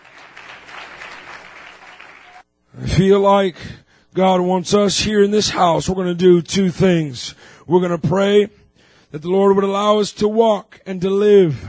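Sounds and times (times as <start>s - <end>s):
congregation clapping hands during a church worship service: 0.0s - 2.4s
speech: 2.7s - 11.6s.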